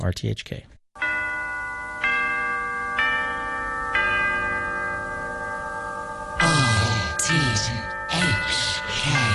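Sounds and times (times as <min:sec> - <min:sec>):
speech: 0:00.0 - 0:00.8
big clock bell tolling: 0:01.0 - 0:09.3.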